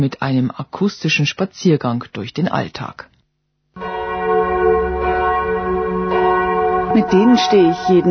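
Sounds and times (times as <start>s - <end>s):
speech: 0.0s - 3.1s, 7.0s - 8.0s
church bells ringing: 3.8s - 8.0s.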